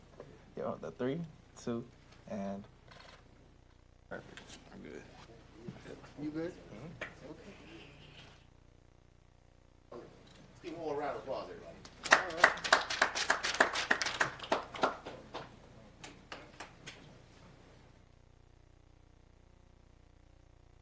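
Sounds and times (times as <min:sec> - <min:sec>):
speech: 0:00.6 - 0:02.8, 0:04.1 - 0:07.6
round of applause from a small audience: 0:11.9 - 0:17.0.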